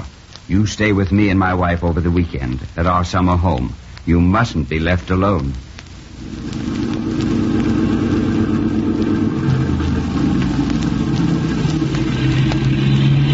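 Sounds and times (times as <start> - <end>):
speech: 0.5 - 6.6
car engine droning on the highway: 6.1 - 13.3.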